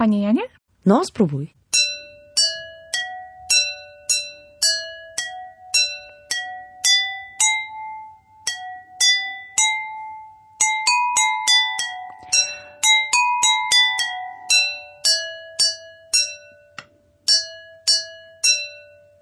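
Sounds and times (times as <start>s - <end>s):
speech: 0.0s - 1.8s
tune tapped on water-tuned drinking glasses: 1.7s - 19.2s.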